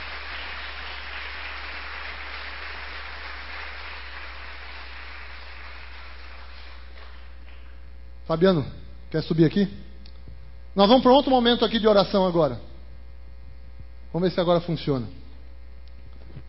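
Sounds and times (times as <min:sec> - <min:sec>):
large crowd applauding loudly: 0:00.0 - 0:07.7
speech: 0:08.3 - 0:09.8, 0:10.8 - 0:12.7, 0:14.1 - 0:15.2.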